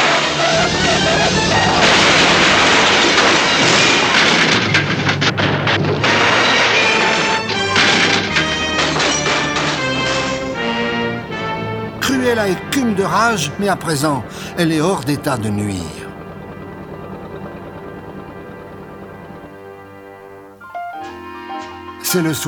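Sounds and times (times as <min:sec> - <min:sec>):
debris clattering: 0:00.0 - 0:12.7
van crashing violently into a ravine: 0:00.0 - 0:16.2
speech: 0:12.5 - 0:16.0, 0:22.1 - 0:22.4.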